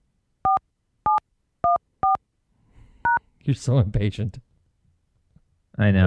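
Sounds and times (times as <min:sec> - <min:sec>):
touch-tone beeps from a telephone keypad dialing an extension: 0:00.5 - 0:02.2
speech: 0:03.4 - 0:04.5, 0:05.8 - 0:06.0.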